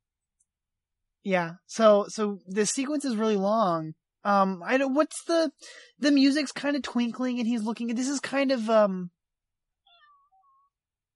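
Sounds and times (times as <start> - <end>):
speech: 1.2 - 9.2
cat meowing: 9.9 - 10.7.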